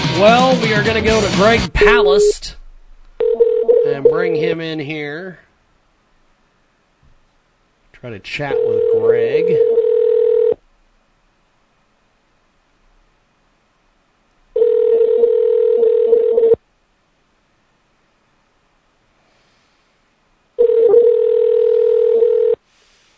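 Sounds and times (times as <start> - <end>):
speech: 0.2 - 2.5, 4.1 - 5.5, 8.0 - 9.8
telephone ringback tone heard through the phone line: 3.2 - 4.1, 8.5 - 10.6, 14.5 - 16.6, 20.6 - 22.6.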